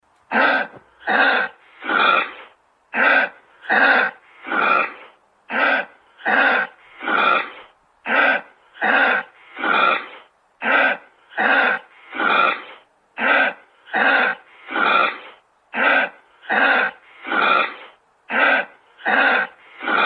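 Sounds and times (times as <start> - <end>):
kangaroo: 0.3 - 20.0.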